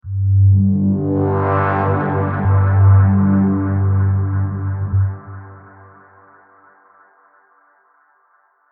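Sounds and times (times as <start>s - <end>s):
synth pad in G major: 0.0s - 6.5s.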